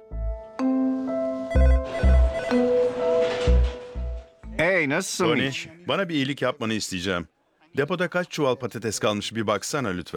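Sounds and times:
melodic electronic telephone ringtone during a call: 0:01.5 - 0:03.2
low thumps: 0:01.6 - 0:04.6
speech: 0:04.8 - 0:10.1.

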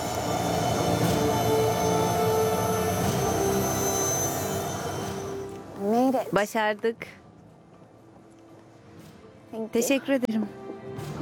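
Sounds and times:
metallic train wheel squeals and tonal whines: 0:00.0 - 0:05.6
Alaska Railroad train approaching on railway tracks: 0:00.0 - 0:06.3
speech: 0:06.2 - 0:07.2, 0:09.5 - 0:11.1.

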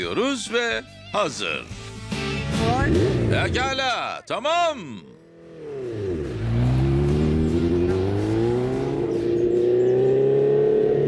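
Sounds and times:
speech: 0:00.0 - 0:01.8, 0:02.6 - 0:05.1
old motorcycle engine running on fresh gasoline after years unused: 0:02.5 - 0:03.7, 0:05.2 - 0:11.0.

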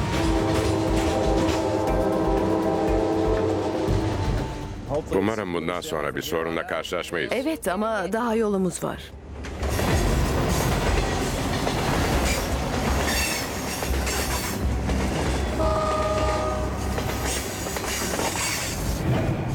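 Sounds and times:
brief horn-like tone: 0:00.0 - 0:04.6, 0:15.6 - 0:16.9
train running on a railway in Alaska coming out of a tunnel: 0:00.0 - 0:06.1, 0:08.8 - 0:19.5
speech: 0:05.0 - 0:09.2.

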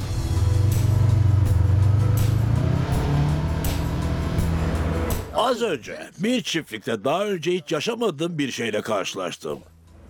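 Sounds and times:
car engine accelerating while driving across farmland: 0:00.0 - 0:05.3
speech: 0:05.4 - 0:09.7.

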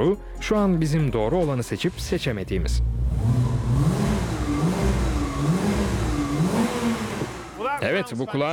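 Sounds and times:
speech: 0:00.0 - 0:03.5, 0:07.8 - 0:08.5
car engine revving through newly fitted sports exhaust: 0:01.9 - 0:07.8.

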